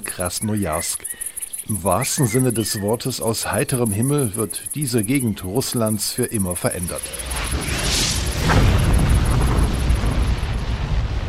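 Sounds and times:
speech: 0.2s - 8.7s
deep rumbling explosive boom of asteroid explosion: 7.0s - 11.2s.

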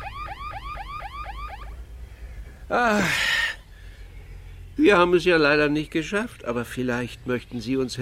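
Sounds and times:
car alarm wailing in up-and-down sweeps: 0.0s - 1.8s
low engine-like rumble: 0.0s - 7.9s
speech: 2.7s - 3.3s, 4.8s - 7.9s.

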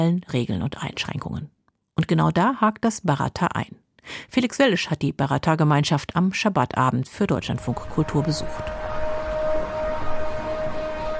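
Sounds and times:
speech: 0.0s - 8.8s
siren announcing start of Sabbath: 7.3s - 11.1s.

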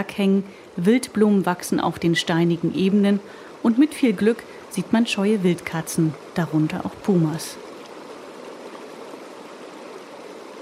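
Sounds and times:
speech: 0.0s - 7.7s
glacier-fed mountain river rushing in the Andes: 2.3s - 10.6s.

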